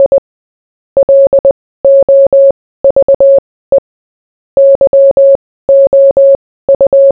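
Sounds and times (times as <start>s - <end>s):
Morse code beeps: 0.0s - 0.2s, 1.0s - 3.8s, 4.6s - 7.1s.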